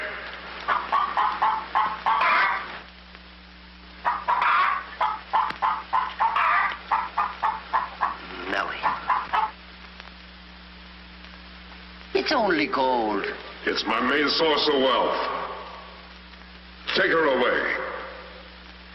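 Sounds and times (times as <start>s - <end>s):
hen clucking while laying an egg: 0.0s - 2.8s, 4.0s - 9.6s
steady low hum: 0.0s - 18.9s
speech: 12.3s - 15.4s, 17.0s - 17.6s.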